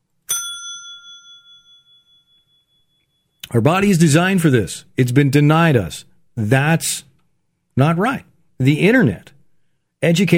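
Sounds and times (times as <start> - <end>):
bright bell strike ringing: 0.3 - 3.4
speech: 3.5 - 7.1, 7.8 - 9.4, 10.0 - 10.3.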